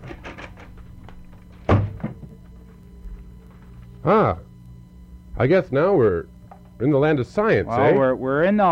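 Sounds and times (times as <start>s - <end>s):
door opening and shutting with a thunk: 1.6s - 2.3s
speech: 4.0s - 4.4s, 5.4s - 8.6s.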